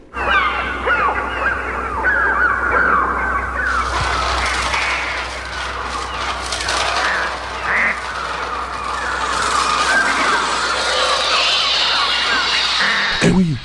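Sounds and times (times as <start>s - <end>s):
shrill electronic bird cries made on a Mixture Trautonium: 0.1s - 5.4s, 7.2s - 13.2s
sharp burst: 3.6s - 13.6s.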